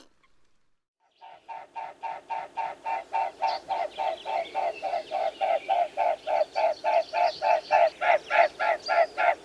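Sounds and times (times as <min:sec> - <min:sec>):
mute swan: 0:01.3 - 0:09.4.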